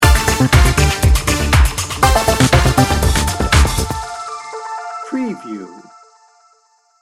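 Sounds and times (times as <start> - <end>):
upbeat music sting bumper: 0.0 - 4.2.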